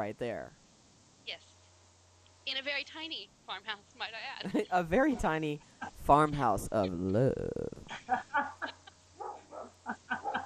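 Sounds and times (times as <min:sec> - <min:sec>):
speech: 0:00.0 - 0:00.6, 0:01.2 - 0:01.5, 0:02.4 - 0:08.8
steady low hum: 0:00.0 - 0:10.4
laughter: 0:04.4 - 0:04.8, 0:05.8 - 0:09.0, 0:09.8 - 0:10.4
dog barking and yelping at home in a small farmhouse: 0:09.2 - 0:10.4.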